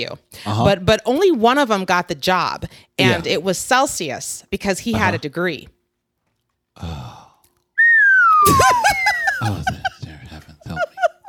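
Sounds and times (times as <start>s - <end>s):
speech: 0.0s - 5.8s, 6.8s - 7.0s
brief groan-like voice: 6.8s - 7.4s
slide whistle played live gliding downward in pitch: 7.8s - 9.4s
laughter: 8.4s - 11.2s.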